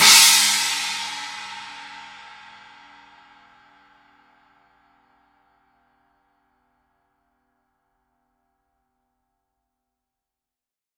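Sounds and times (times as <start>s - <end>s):
20-inch Paiste 2002 Novo China cymbal: 0.0s - 3.6s.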